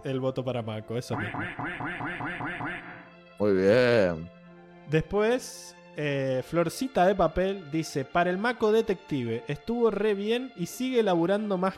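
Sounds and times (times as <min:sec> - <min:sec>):
speech: 0:00.0 - 0:11.7
duck quacking with nasal calls: 0:01.2 - 0:03.1.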